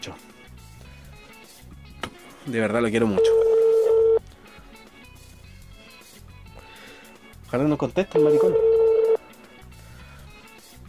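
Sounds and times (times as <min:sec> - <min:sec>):
speech: 0:00.0 - 0:00.3, 0:02.4 - 0:03.4, 0:07.5 - 0:08.6
telephone tone as a call is placed: 0:03.2 - 0:04.2, 0:08.2 - 0:09.2.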